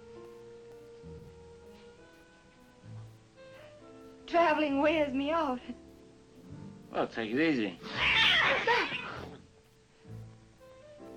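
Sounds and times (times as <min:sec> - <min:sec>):
speech: 0:04.3 - 0:05.8, 0:07.0 - 0:08.9
cats meowing loudly and insistently: 0:07.8 - 0:09.4.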